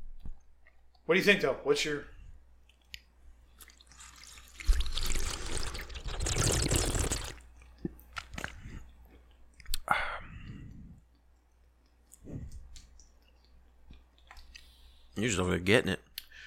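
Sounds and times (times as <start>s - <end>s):
speech: 1.1s - 2.1s, 15.2s - 16.0s
cat lapping a person's drinking water: 3.7s - 7.4s.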